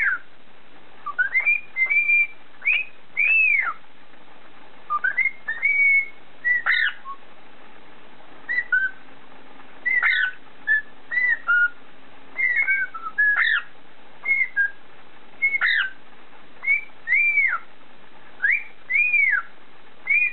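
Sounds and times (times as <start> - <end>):
cockatiel whistling short phrases: 0.0 - 0.3, 1.0 - 3.8, 4.9 - 7.2, 8.5 - 9.0, 9.8 - 11.8, 12.4 - 14.8, 15.4 - 16.0, 16.6 - 17.7, 18.4 - 20.3.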